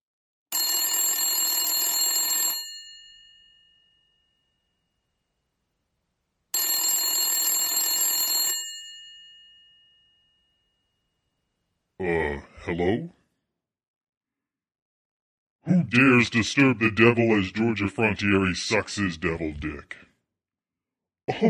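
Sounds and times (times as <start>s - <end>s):
old-fashioned telephone bell ringing with metallic trill: 0.5s - 4.5s, 6.6s - 10.6s
speech: 12.0s - 13.2s, 15.9s - 20.1s, 21.3s - 21.4s
laughter: 15.7s - 19.9s.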